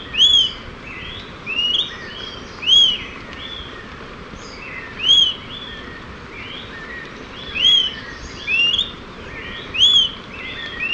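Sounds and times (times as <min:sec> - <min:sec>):
constant hiss: 0:00.0 - 0:10.9
smoke-colored pewee Contopus fumigatus ardosiacus calling: 0:00.1 - 0:00.6, 0:02.6 - 0:03.0, 0:05.0 - 0:05.4, 0:07.5 - 0:08.9, 0:09.7 - 0:10.9.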